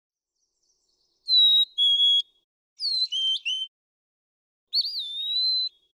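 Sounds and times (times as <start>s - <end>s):
Brown thrasher whistled song: 1.2s - 3.7s, 4.7s - 5.9s.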